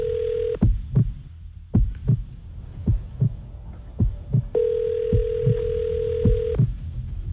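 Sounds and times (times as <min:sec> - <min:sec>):
phone ringback tone while calling a pizza delivery shop: 0:00.0 - 0:00.6, 0:04.6 - 0:06.6
soft rhythmic thumping: 0:00.0 - 0:07.3.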